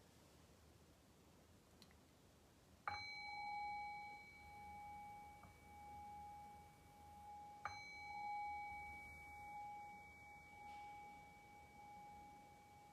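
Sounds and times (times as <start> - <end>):
meditation bell struck to close a guided meditation: 2.9 - 12.9.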